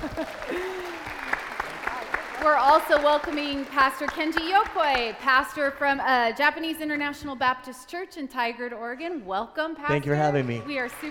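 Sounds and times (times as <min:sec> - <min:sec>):
small group applauding: 0:00.0 - 0:05.3, 0:10.0 - 0:11.0
speech: 0:00.1 - 0:00.9, 0:02.4 - 0:11.0.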